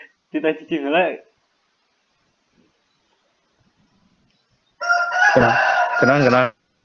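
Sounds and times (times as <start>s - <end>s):
speech: 0.3s - 1.3s, 5.4s - 6.6s
rooster crowing: 4.8s - 6.4s.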